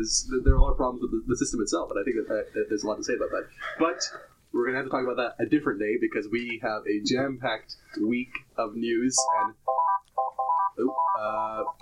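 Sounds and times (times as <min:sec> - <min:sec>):
speech: 0:00.0 - 0:09.8, 0:10.8 - 0:11.7
electronic telephone ringtone signalling an incoming call: 0:09.2 - 0:11.7.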